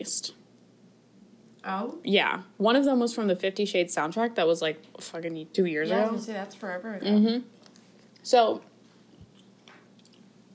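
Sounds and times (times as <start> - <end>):
speech: 0.0 - 0.4, 1.6 - 7.6, 8.2 - 8.7
soft chewing with crunchy bites: 7.6 - 10.5
wet mouth clicks: 9.2 - 10.3.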